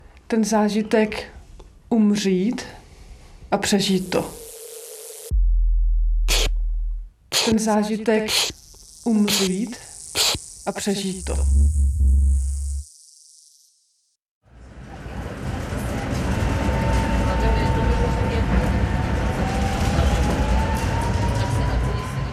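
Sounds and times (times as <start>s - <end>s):
speech: 0.3s - 2.8s, 3.5s - 4.4s, 7.5s - 12.2s
short low hum: 3.8s - 7.6s, 8.3s - 13.5s
tram rumbling along rails from Smíchov railway station: 14.8s - 22.3s.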